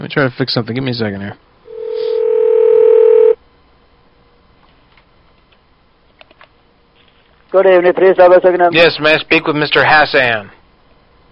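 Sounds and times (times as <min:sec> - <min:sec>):
speech: 0:00.0 - 0:01.5, 0:07.6 - 0:10.6
telephone line tone while a call is dialed: 0:01.7 - 0:03.4.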